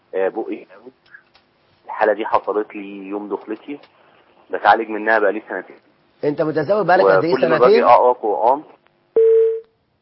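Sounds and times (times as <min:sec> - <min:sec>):
speech: 0:00.1 - 0:01.2, 0:01.9 - 0:08.8
telephone beep after a call is disconnected: 0:09.2 - 0:09.7.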